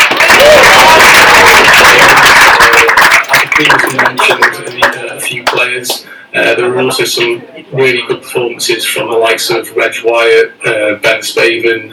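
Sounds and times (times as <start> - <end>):
crowd applauding award winner: 0.0 - 5.7
speech: 5.8 - 11.9.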